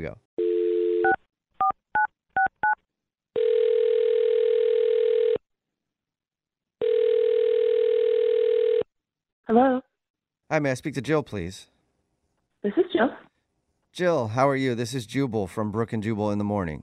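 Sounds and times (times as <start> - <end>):
speech: 0.0 - 0.3, 9.5 - 9.9, 10.5 - 11.7, 12.6 - 13.2, 14.0 - 16.8
telephone dial tone: 0.4 - 1.2, 3.4 - 5.4, 6.8 - 8.9.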